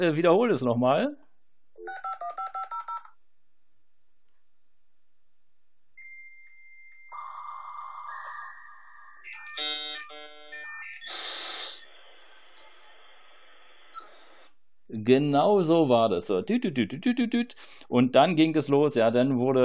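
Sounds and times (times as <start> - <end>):
speech: 0.0 - 1.3, 15.0 - 19.6
dial-up modem dialing touch-tone beeps: 9.2 - 11.9, 13.9 - 14.5.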